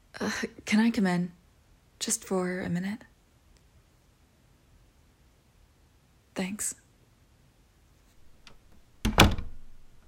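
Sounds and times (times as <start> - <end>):
speech: 0.2 - 1.4, 2.0 - 3.1, 6.4 - 6.8
door shutting: 8.2 - 10.0.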